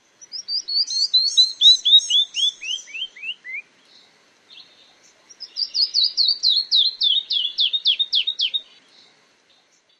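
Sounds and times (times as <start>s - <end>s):
Canyon Wren singing: 0.0s - 9.9s.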